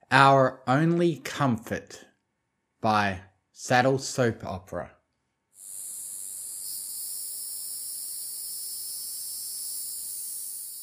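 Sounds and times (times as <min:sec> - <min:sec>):
speech: 0:00.1 - 0:02.1, 0:02.8 - 0:05.0
chorus of summer cicadas trilling: 0:05.6 - 0:10.8.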